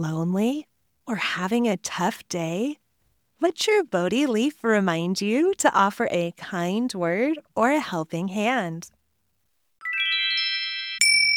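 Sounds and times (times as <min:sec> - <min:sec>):
speech: 0:00.0 - 0:02.8, 0:03.4 - 0:09.0
tiny Buddhist temple bell ringing: 0:09.8 - 0:11.3.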